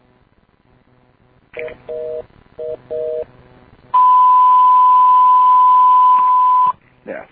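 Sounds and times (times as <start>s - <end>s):
speech: 1.6s - 3.4s
DTMF two-tone telephone beeps: 4.0s - 6.8s.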